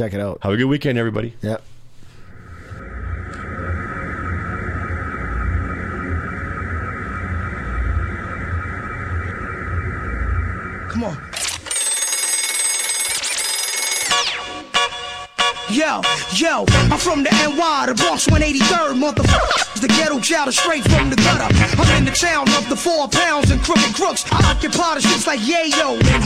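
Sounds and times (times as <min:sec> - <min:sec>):
speech: 0:00.0 - 0:01.7, 0:11.0 - 0:11.4, 0:15.9 - 0:26.2
bright warbling phone ring: 0:02.2 - 0:14.6
electronic phone-like ringing tone: 0:11.3 - 0:15.3
thumping hip-hop beat: 0:15.7 - 0:26.2.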